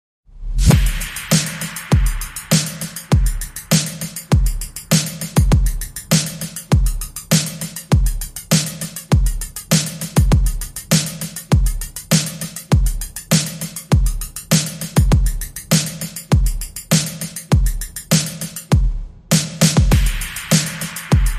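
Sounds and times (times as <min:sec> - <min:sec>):
drums: 0:00.5 - 0:21.3.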